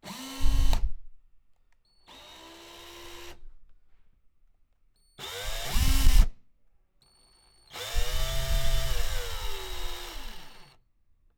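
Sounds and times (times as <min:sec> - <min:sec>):
electric drill in a workshop: 0:00.0 - 0:00.9, 0:02.1 - 0:03.4, 0:05.2 - 0:06.3, 0:07.7 - 0:10.8.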